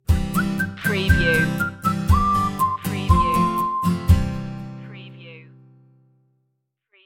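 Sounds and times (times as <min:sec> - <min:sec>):
happy whistle stinger: 0:00.4 - 0:04.2.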